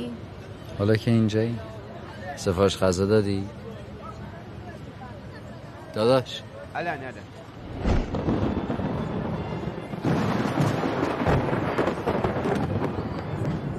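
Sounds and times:
speech: 0.8s - 1.8s, 2.4s - 3.6s, 6.0s - 7.9s
thunder rumbling: 7.6s - 13.7s.

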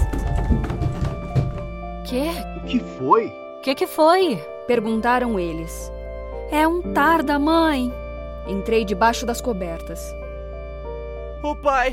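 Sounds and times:
two people running down wooden stairs: 0.0s - 2.0s
speech: 2.1s - 10.2s, 11.4s - 11.9s.

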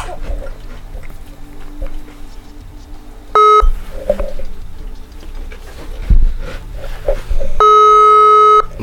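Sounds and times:
phone ringback tone of an unanswered call over a loudspeaker: 3.3s - 3.7s, 7.6s - 8.7s.

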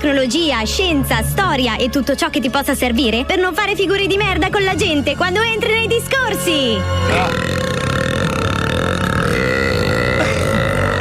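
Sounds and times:
speech: 0.0s - 7.8s
long loud rumbling burp: 7.0s - 10.9s.

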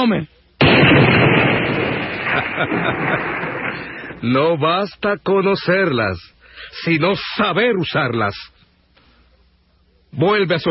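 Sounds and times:
speech: 0.0s - 1.3s, 2.3s - 8.5s, 10.1s - 10.6s
gun fired at a target during shooting practice: 0.6s - 4.2s.

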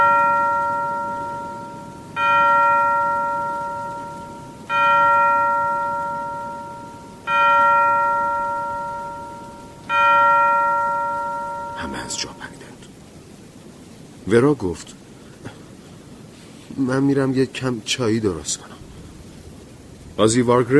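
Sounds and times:
clock striking bell-like chimes: 0.0s - 12.6s
speech: 14.3s - 15.0s, 16.8s - 18.8s, 20.2s - 20.7s.

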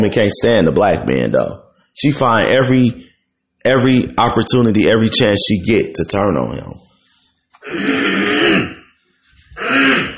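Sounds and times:
speech: 0.0s - 6.9s, 7.6s - 8.7s, 9.6s - 10.1s
person clearing throat: 7.6s - 8.9s, 9.6s - 10.1s.

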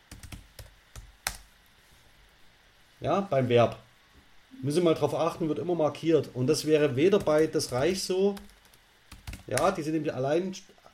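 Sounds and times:
typing on a computer keyboard: 0.1s - 1.4s, 7.1s - 9.8s
speech: 3.0s - 3.8s, 4.6s - 8.5s, 9.5s - 10.8s.

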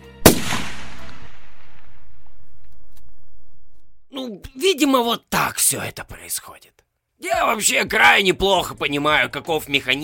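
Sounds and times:
single sharp gunshot with long tail: 0.2s - 4.0s
speech: 4.2s - 10.0s.

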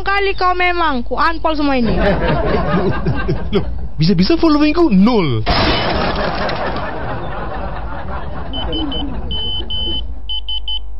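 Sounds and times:
speech: 0.0s - 5.9s
laughter: 1.8s - 4.0s, 5.8s - 10.3s
phone text message notification beeps: 8.5s - 10.8s.

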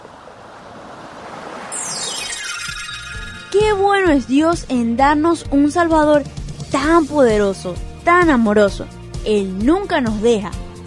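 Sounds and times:
steady wash of sea waves: 0.0s - 4.7s
thin whistling sweep sliding downward: 1.5s - 4.4s
speech: 3.6s - 10.6s.

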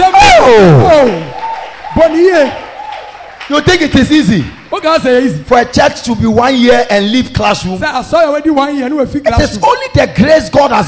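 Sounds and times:
people whooping and shouting: 0.0s - 3.4s
church audience clapping and cheering: 0.1s - 6.7s
speech: 0.5s - 1.2s, 2.0s - 2.6s, 3.5s - 10.8s.

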